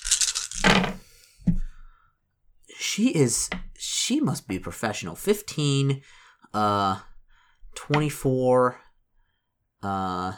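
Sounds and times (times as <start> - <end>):
dice clattering and tumbling across a hard surface: 0.0 - 1.0
speech: 3.0 - 7.1, 7.8 - 8.8, 9.8 - 10.3.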